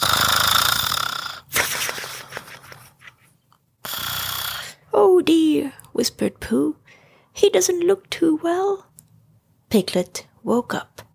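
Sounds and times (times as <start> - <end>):
loud rasping snoring: 0.0 - 1.5, 3.8 - 4.8
speech: 5.2 - 6.8, 7.4 - 8.9, 9.7 - 11.1.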